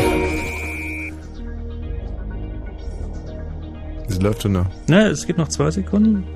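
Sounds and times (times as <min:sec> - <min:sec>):
bright high synth note: 0:00.0 - 0:01.2
electronic background music bed with sustained synth tones: 0:00.0 - 0:06.3
speech: 0:04.1 - 0:06.3.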